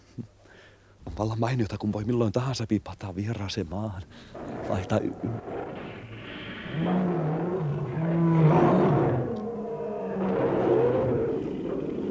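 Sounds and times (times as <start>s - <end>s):
speech: 1.2s - 5.7s
lions roaring: 4.4s - 12.0s.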